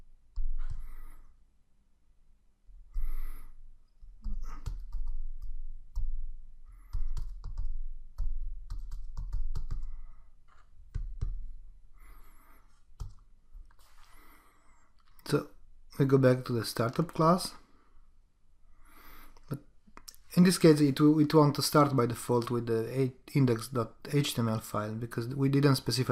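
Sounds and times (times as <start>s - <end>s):
typing code on a computer keyboard: 4.2s - 6.1s, 6.8s - 11.4s, 13.0s - 13.7s
speech: 15.3s - 17.6s, 20.4s - 26.0s.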